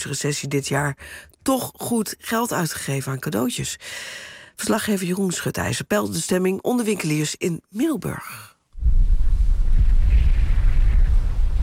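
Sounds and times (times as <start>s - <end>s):
speech: 0.0s - 9.0s
wind gusts buffeting the microphone in rainy weather in Middelburg: 8.8s - 11.6s.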